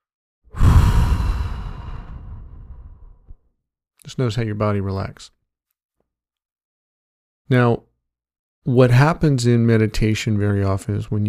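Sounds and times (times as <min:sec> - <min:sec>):
deep audible breath during a relaxation exercise: 0:00.5 - 0:03.4
speech: 0:04.1 - 0:05.4, 0:07.5 - 0:07.9, 0:08.6 - 0:11.2.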